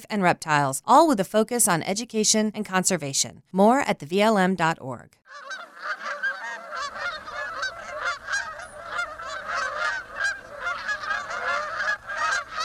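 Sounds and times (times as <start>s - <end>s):
speech: 0.0s - 6.1s
dense chorus of many ducks honking and quacking: 5.3s - 12.6s.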